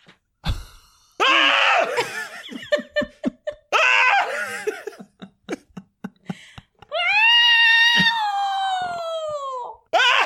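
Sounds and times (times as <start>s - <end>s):
laughter: 1.8s - 7.1s
person yowling mimicking a caterwauling cat: 6.9s - 10.2s.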